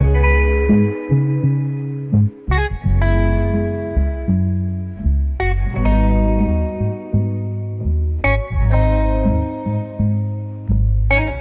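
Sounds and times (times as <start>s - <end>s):
warm phonk guitar loop: 0.0s - 11.3s.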